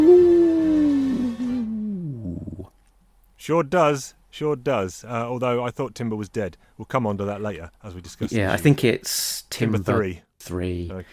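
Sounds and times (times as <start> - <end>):
person imitating wolf howl: 0.0 - 2.7
speech: 3.4 - 11.1.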